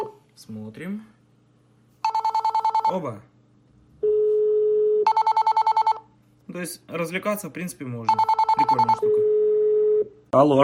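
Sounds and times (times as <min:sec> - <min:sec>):
speech: 0:00.4 - 0:01.2, 0:02.9 - 0:03.3, 0:06.5 - 0:09.4, 0:10.3 - 0:10.6
telephone number being dialed with DTMF tones: 0:02.0 - 0:03.0, 0:04.0 - 0:06.0, 0:08.1 - 0:10.0.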